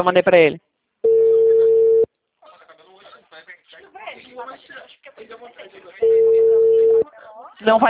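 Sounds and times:
telephone ringback tone of an outgoing call: 1.0s - 2.1s, 6.0s - 7.0s.

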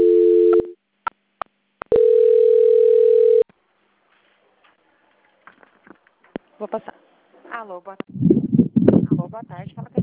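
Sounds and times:
steady mid-pitched telephone line tone during a bank call transfer: 0.0s - 0.8s, 1.9s - 3.5s
speech: 6.6s - 8.2s, 9.2s - 10.0s.

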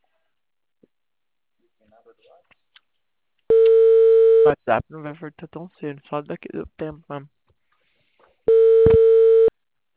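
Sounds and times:
speech: 1.9s - 2.7s, 4.4s - 7.4s
telephone call tone: 3.5s - 4.5s, 8.5s - 9.5s.

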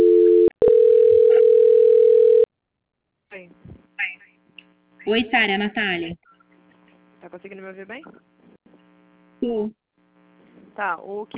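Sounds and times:
telephone line tone during call transfer: 0.0s - 2.5s
speech: 5.1s - 6.3s, 7.2s - 8.3s, 9.4s - 9.8s, 10.8s - 11.3s.

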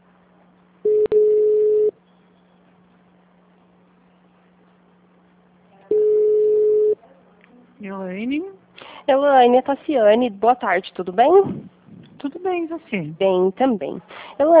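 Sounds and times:
quiet telephone line hiss: 0.9s - 1.9s
telephone line tones while a call is transferred: 0.9s - 2.0s, 5.9s - 7.0s
speech: 8.0s - 11.6s, 12.4s - 14.5s.

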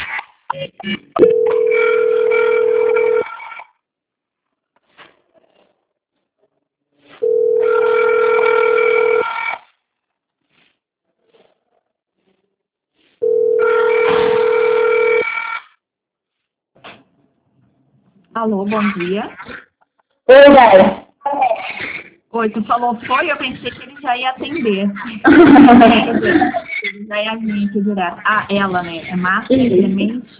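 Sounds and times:
long electronic telephone ring bursts while a call is transferred: 1.2s - 3.6s, 7.2s - 9.6s, 13.2s - 15.6s
speech: 18.5s - 19.6s, 20.3s - 21.0s, 22.4s - 30.3s
laughter: 25.0s - 27.0s.

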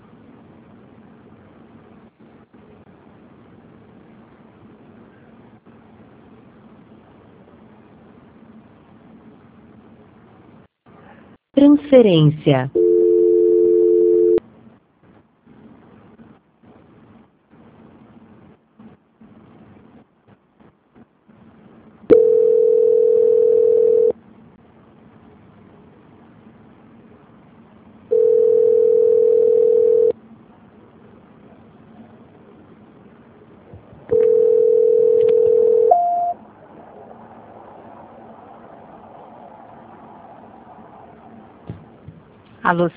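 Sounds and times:
speech: 11.6s - 12.8s, 42.8s - 42.9s
brief two-pitch telephone line tone after a dropped call: 12.7s - 14.4s, 22.1s - 24.2s, 28.1s - 30.2s, 34.1s - 36.4s
steady mid-pitched telephone line tones after a dropped call: 12.7s - 14.4s, 22.1s - 24.2s, 28.0s - 30.2s, 33.7s - 37.1s
telephone line clicks: 34.1s - 36.0s
short higher telephone beep: 35.9s - 36.4s.

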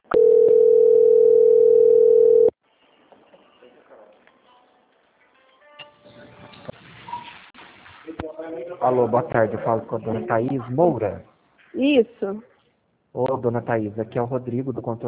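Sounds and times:
continuous single-pitched telephone tone during a bank call transfer: 0.0s - 2.6s
speech: 8.8s - 12.5s, 13.2s - 15.0s.

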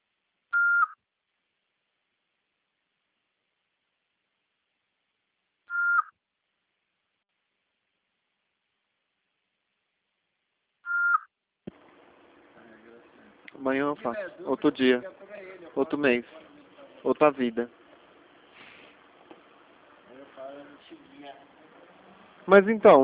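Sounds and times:
answering machine beeps: 0.6s - 1.0s, 5.7s - 6.1s, 10.9s - 11.2s
low hiss of telephone line static: 1.2s - 23.0s
speech: 13.6s - 17.8s, 22.4s - 23.0s.

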